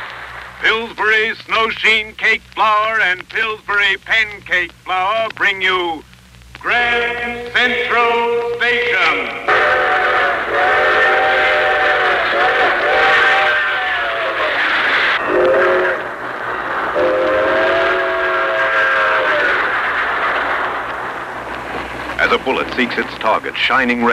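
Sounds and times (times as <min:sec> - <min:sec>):
speech: 0:00.6 - 0:06.1, 0:06.6 - 0:11.0, 0:22.2 - 0:24.1
train horn sounding loud chord-like blasts: 0:09.5 - 0:13.8, 0:15.2 - 0:16.2, 0:16.9 - 0:19.6
train wheels rumbling on rails: 0:15.2 - 0:24.1.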